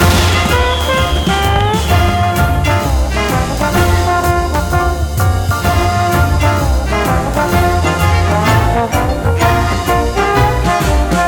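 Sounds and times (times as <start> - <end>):
big win jingle base: 0.0 - 11.2.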